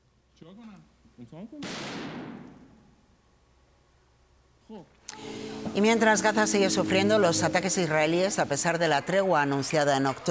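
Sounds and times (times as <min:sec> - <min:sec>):
speech: 0:00.4 - 0:02.6, 0:04.7 - 0:10.2
gunshot fired live by a TV presenter: 0:01.6 - 0:02.9.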